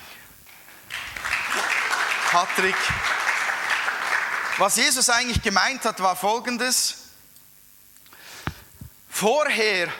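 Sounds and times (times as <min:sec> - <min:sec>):
crowd of many hands clapping: 0:00.5 - 0:05.3
speech: 0:02.3 - 0:03.2, 0:04.6 - 0:07.0, 0:09.2 - 0:09.9.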